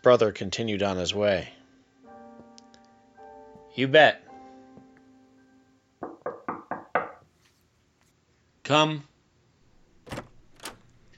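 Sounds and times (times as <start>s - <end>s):
speech: 0.0s - 1.6s, 3.8s - 4.2s, 8.7s - 9.1s
door opening: 9.6s - 11.1s.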